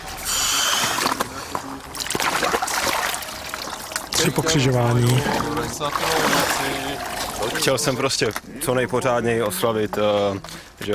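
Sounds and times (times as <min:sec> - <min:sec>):
water churning and splashing as someone plunges into cold water: 0:00.5 - 0:08.2
speech: 0:04.2 - 0:10.9.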